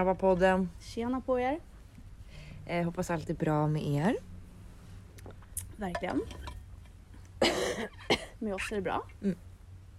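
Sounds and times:
speech: 0.0s - 1.7s, 2.7s - 4.3s, 5.2s - 6.5s, 7.4s - 9.5s
person with asthma problems coughing: 7.4s - 8.4s.

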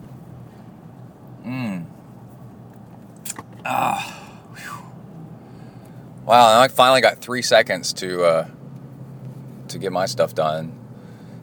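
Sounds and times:
soft hummed vocal sound: 1.4s - 1.9s, 3.7s - 4.3s
wet slurp of someone sipping coffee: 3.2s - 3.6s
brief swallow or exhale: 3.2s - 4.3s
speech: 3.7s - 4.2s, 6.3s - 8.6s, 9.7s - 10.8s.

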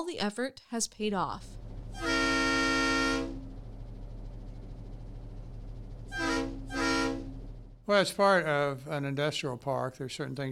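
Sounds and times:
speech: 0.0s - 2.2s, 7.9s - 10.4s
low rumble of an idling locomotive engine: 1.2s - 7.9s
train horn blasts at an industrial park rail facility: 1.8s - 3.8s, 6.0s - 7.7s.

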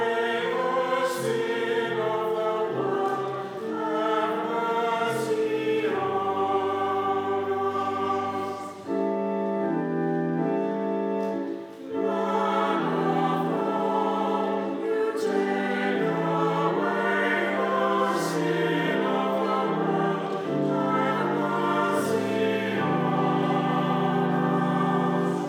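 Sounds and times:
choir singing: 0.0s - 25.4s
organ: 0.0s - 25.4s.

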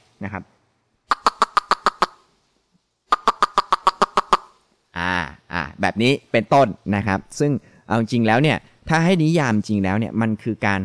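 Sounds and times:
speech: 0.2s - 0.6s, 5.8s - 10.8s
person imitating a tokay gecko call with the mouth: 1.1s - 2.3s, 3.1s - 5.8s.

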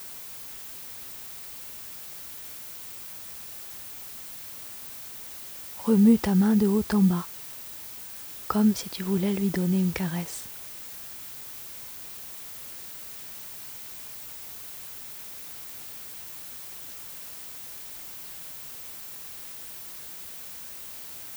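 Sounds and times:
white noise from a loudspeaker: 4.6s - 7.9s, 8.5s - 10.5s
speech: 5.8s - 7.3s, 8.5s - 10.5s.

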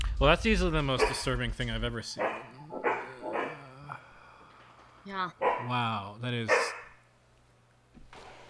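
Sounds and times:
speech: 0.2s - 2.5s, 5.2s - 6.8s
dog barking: 1.0s - 1.3s, 2.2s - 3.9s, 5.3s - 5.8s, 6.5s - 7.1s.

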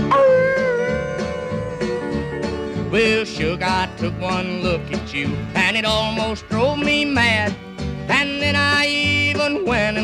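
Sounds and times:
voice imitating a dog howling at the moon: 0.0s - 2.9s
speech: 3.0s - 10.0s.

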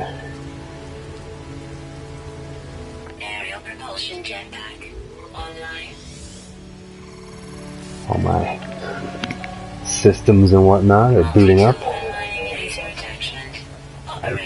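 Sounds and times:
low sustained drone: 0.0s - 14.4s
rain in a video game desert: 0.0s - 14.4s
speech: 3.6s - 6.1s, 8.1s - 9.3s, 9.9s - 12.0s
swooping electronic tones: 4.5s - 14.4s.

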